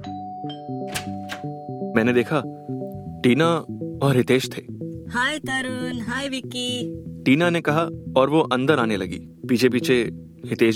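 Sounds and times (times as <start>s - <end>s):
electronic doorbell ding-dong chime: 0.0s - 3.4s
speech: 2.0s - 2.6s, 3.2s - 10.7s.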